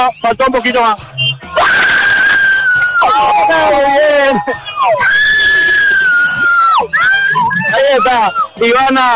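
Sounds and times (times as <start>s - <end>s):
speech: 0.1s - 1.9s, 3.1s - 5.1s, 7.7s - 9.1s
woman screaming a high-pitched goal celebration: 1.6s - 8.6s.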